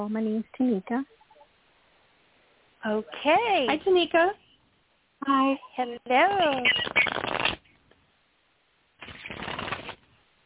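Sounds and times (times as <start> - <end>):
speech: 0.0 - 1.2, 2.8 - 4.4, 5.2 - 7.0
tarot cards being shuffled over a phone line: 6.5 - 7.7, 9.0 - 10.1.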